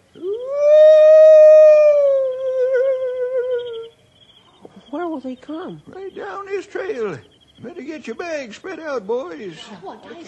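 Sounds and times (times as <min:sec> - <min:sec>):
human voice imitating an owl as a signal: 0:00.1 - 0:03.9
speech: 0:05.2 - 0:10.2.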